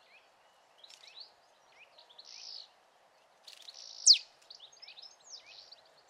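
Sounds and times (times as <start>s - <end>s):
soft chirps and buzzy twitters: 0.0s - 6.0s
marsh tit Poecile palustris sharp high downward-sweeping call: 4.0s - 4.2s.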